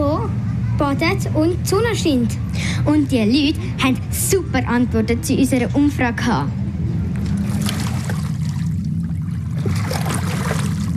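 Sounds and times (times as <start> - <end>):
speech: 0.9 - 6.6
low rumble at Lake Zurich: 3.6 - 10.9
lake water lapping and trickling at Lake Zurich: 7.0 - 10.9.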